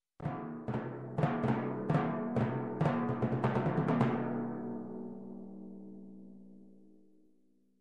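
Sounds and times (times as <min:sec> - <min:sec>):
majestic timpani: 0:00.2 - 0:04.7.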